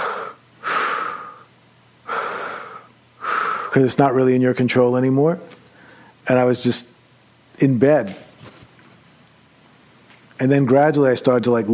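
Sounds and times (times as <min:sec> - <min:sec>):
voice imitating heavy labored breathing: 0:00.0 - 0:01.5, 0:02.1 - 0:03.8
speech: 0:03.8 - 0:05.6, 0:06.3 - 0:06.9, 0:07.6 - 0:08.2, 0:10.4 - 0:11.7.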